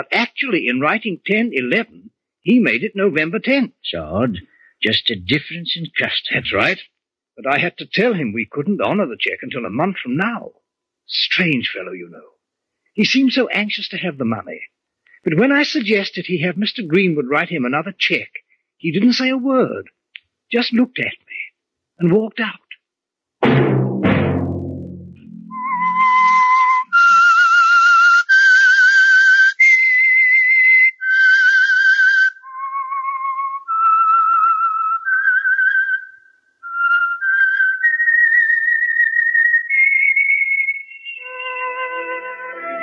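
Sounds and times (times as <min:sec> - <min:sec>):
speech: 0:00.0 - 0:12.3, 0:13.0 - 0:21.2, 0:22.0 - 0:22.6
low thump: 0:23.4 - 0:25.6
whistled radio programme signal theme: 0:25.3 - 0:42.8.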